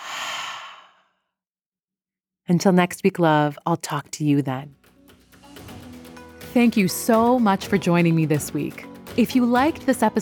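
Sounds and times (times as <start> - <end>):
slow breathy exhale during breathing exercise: 0.0 - 1.3
speech: 2.5 - 4.8, 6.5 - 10.2.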